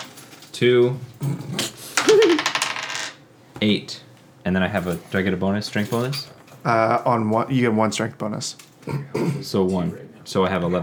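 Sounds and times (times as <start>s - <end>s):
speech: 0.6s - 2.3s, 3.6s - 10.8s
d10 dice clattering across a hard tabletop: 2.0s - 3.2s.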